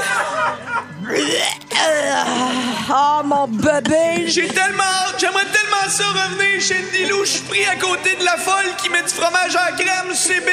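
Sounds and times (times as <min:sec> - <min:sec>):
laughter: 0:00.0 - 0:02.9, 0:04.0 - 0:10.5
person burping after drinking beer: 0:00.9 - 0:03.0
speech: 0:02.9 - 0:10.5.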